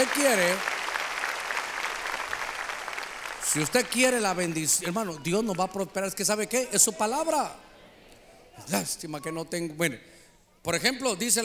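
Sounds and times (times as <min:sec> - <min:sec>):
speech: 0:00.0 - 0:00.8, 0:03.6 - 0:07.7, 0:08.6 - 0:11.4
audience clapping loudly: 0:00.0 - 0:05.8.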